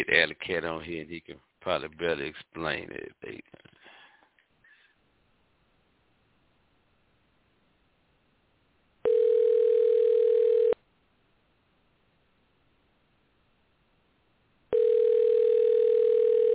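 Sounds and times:
speech: 0.0 - 3.7
telephone ringback tone heard by a caller placing a call: 9.0 - 10.8, 14.7 - 16.5.

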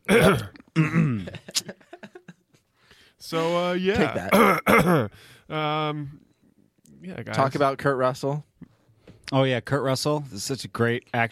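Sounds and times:
short throaty grunts: 0.0 - 1.4
person clearing throat into a microphone: 0.0 - 1.5, 4.2 - 5.1
speech: 0.3 - 1.4, 3.2 - 6.2, 7.0 - 8.5, 9.3 - 11.2.

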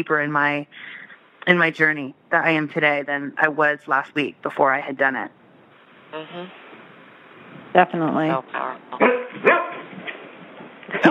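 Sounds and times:
speech: 0.0 - 5.4, 6.1 - 6.6, 7.7 - 9.6
dog barking: 9.0 - 9.9.

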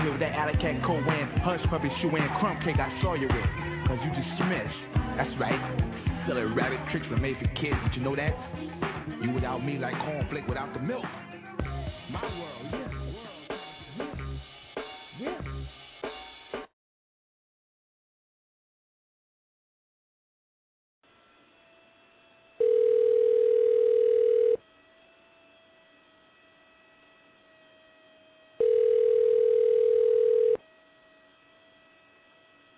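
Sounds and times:
speech: 0.1 - 11.3, 12.1 - 12.8
telephone line tone during a prank call: 22.6 - 24.6, 28.6 - 30.6.

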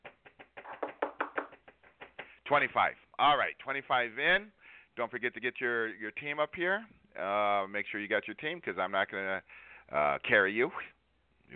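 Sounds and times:
players knocking on a hard surface: 0.0 - 2.4
speech: 2.5 - 11.5.

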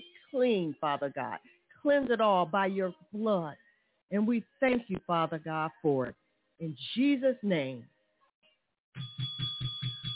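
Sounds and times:
speech: 0.3 - 7.9
bell ringing during a church worship service: 9.0 - 10.1.

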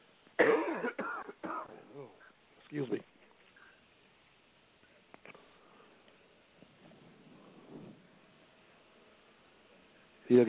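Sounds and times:
person coughing harshly: 0.4 - 2.1
speech: 2.0 - 3.1.

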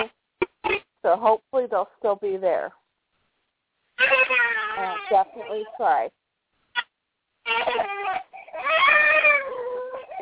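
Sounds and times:
speech: 1.1 - 2.8, 4.0 - 6.2
young girl crying in a tantrum heard over a phone: 4.0 - 5.7, 7.5 - 10.2.

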